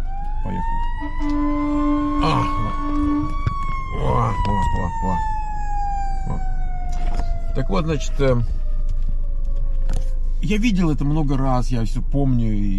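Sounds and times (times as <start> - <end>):
fire engine or ambulance siren wailing: 0.0 - 11.6
traffic rumble: 0.0 - 12.7
speech: 0.4 - 5.3, 6.3 - 6.5, 7.6 - 8.6, 10.4 - 12.7.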